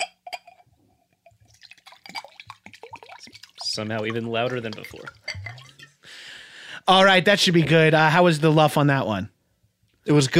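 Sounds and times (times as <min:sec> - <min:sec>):
clear glass clinks: 0:00.0 - 0:00.7, 0:01.9 - 0:06.0
water pouring into glasses: 0:01.3 - 0:06.0
speech: 0:03.8 - 0:05.2, 0:06.9 - 0:09.4, 0:10.1 - 0:10.3.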